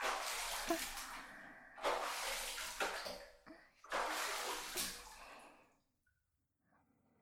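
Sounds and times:
water poured to rinse someone's back: 0.0 - 5.8
speech: 0.7 - 1.0.

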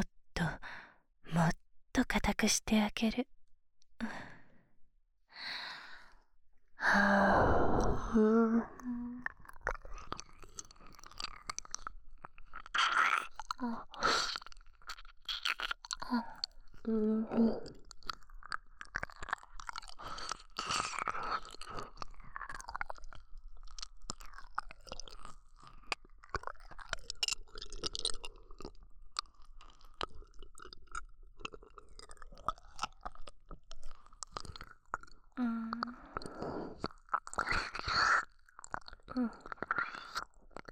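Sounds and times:
speech: 2.2 - 3.4, 4.0 - 4.3, 6.8 - 8.8, 16.8 - 17.8
breathy sighs: 4.0 - 4.7, 6.8 - 9.3, 16.0 - 17.8, 35.4 - 36.9
wet licking and slurping mouth sounds of close-mic ear-licking ASMR: 9.3 - 16.9, 17.6 - 40.6.

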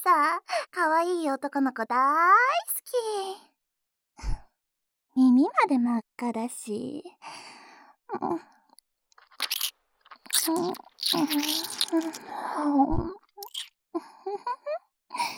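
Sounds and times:
speech: 0.0 - 3.5, 5.2 - 8.6, 10.4 - 15.3
girl munching and nibbling on a young man's ear: 9.2 - 12.3, 13.4 - 13.7.

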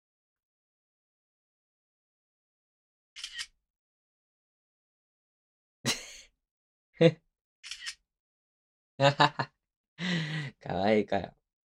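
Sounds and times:
camera shutter clicks: 3.2 - 3.5, 7.6 - 8.0
speech: 7.0 - 7.8, 9.0 - 11.4.

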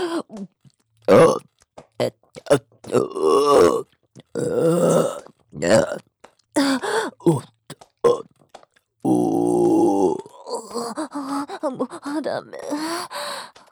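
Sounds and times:
throaty grunting vocal sounds: 0.0 - 0.4, 1.1 - 6.0, 6.6 - 8.3, 9.0 - 12.8
loud burps: 0.0 - 12.9
speech: 1.1 - 1.4.

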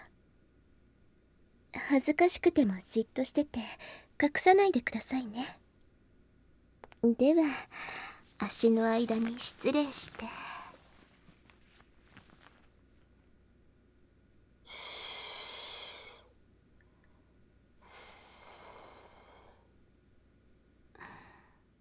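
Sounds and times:
speech: 1.9 - 5.6, 7.0 - 10.5
woman breathing close to the microphone: 3.6 - 4.2, 7.5 - 8.4, 9.0 - 11.2, 14.6 - 19.9, 21.0 - 21.7.

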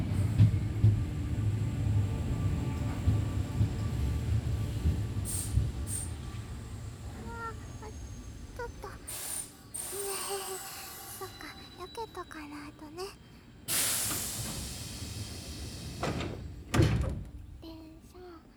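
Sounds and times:
train pulling into a station with low rumble: 0.0 - 18.4
train brake hiss and squeal: 7.6 - 12.2, 13.7 - 16.1.

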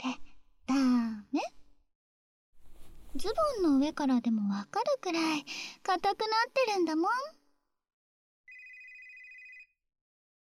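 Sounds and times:
speech: 3.2 - 7.4
telephone ringing: 8.5 - 9.8.

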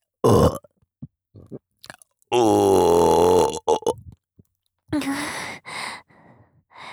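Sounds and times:
long loud rumbling burp: 0.2 - 0.7, 2.3 - 4.0
speech: 2.3 - 2.8
short breathy sighs: 5.0 - 6.9.

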